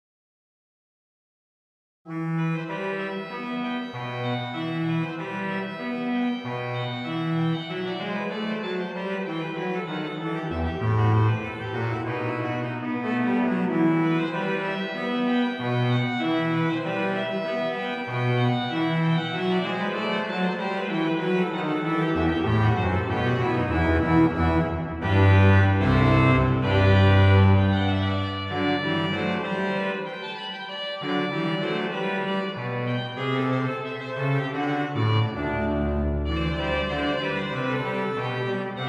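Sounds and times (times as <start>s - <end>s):
organ music: 3.2s - 38.8s.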